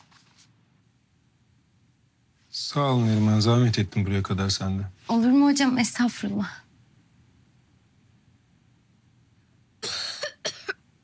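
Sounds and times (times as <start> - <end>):
speech: 2.6 - 6.6
harsh raspy chesty cough: 9.8 - 10.8.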